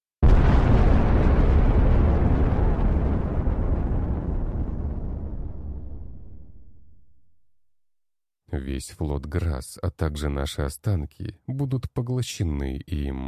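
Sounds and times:
massive explosion of a planet bursting apart: 0.2s - 7.2s
speech: 8.7s - 13.2s.

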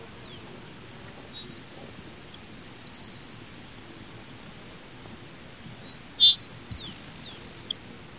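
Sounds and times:
soft background hiss: 0.0s - 8.1s
Grassland Sparrow Ammodramus humeralis sharp high call: 6.2s - 7.7s.

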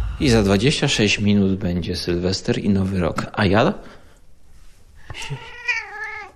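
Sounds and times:
speech: 0.2s - 4.0s, 5.2s - 5.5s
cat meowing: 5.3s - 6.3s.

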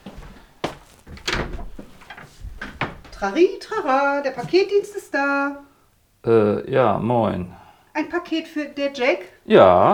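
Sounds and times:
squeaking door opening: 1.0s - 3.3s
speech: 3.2s - 9.9s.

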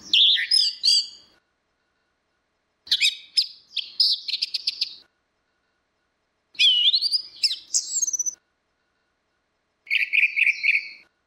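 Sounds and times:
Orange-headed thrush whistled song: 0.0s - 1.4s, 2.9s - 5.1s, 6.6s - 8.4s, 9.9s - 11.1s.

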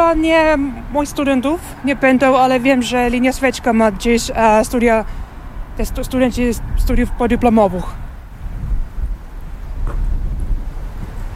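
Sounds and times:
wind blowing between city buildings buffeting the microphone: 0.0s - 11.3s
speech: 0.1s - 5.2s, 5.8s - 8.0s.

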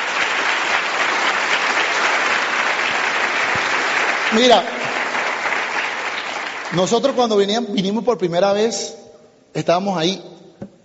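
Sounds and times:
audience applause for first-time attendees at a gathering: 0.0s - 7.2s
speech: 4.3s - 4.8s, 6.7s - 10.3s.

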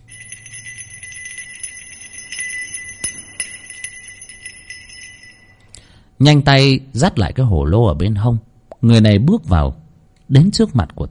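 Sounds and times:
small bell jingling softly as someone walks in: 0.0s - 5.7s
speech: 6.2s - 11.0s.

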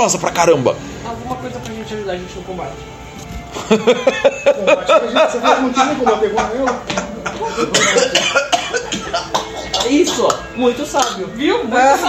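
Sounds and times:
speech: 0.0s - 12.0s
steady busy noise: 0.0s - 12.0s
laughter: 3.5s - 9.8s
person with a dry throat coughing: 7.3s - 10.4s.

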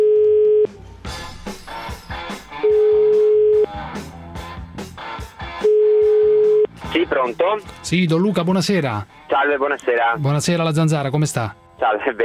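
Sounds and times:
telephone line tone while placing a call: 0.0s - 0.8s, 2.6s - 3.7s, 5.6s - 6.7s
speech: 7.1s - 12.2s.

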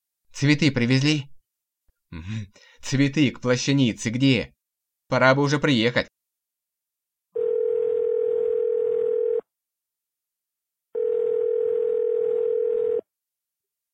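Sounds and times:
speech: 0.4s - 1.3s, 2.1s - 6.2s
telephone dial tone: 7.4s - 9.4s, 11.0s - 13.1s.

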